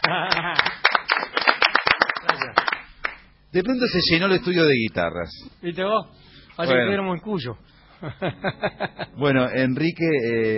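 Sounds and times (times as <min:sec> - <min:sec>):
laughter: 0:00.0 - 0:00.8, 0:08.0 - 0:09.2
small studio audience applause: 0:00.0 - 0:03.2
speech: 0:03.6 - 0:10.5.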